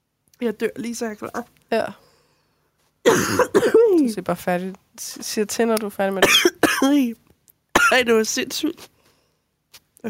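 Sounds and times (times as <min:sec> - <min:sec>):
speech: 0:00.4 - 0:02.0, 0:03.0 - 0:07.2, 0:07.9 - 0:08.9
person coughing roughly and harshly: 0:03.0 - 0:03.8, 0:06.2 - 0:07.0, 0:07.8 - 0:08.0.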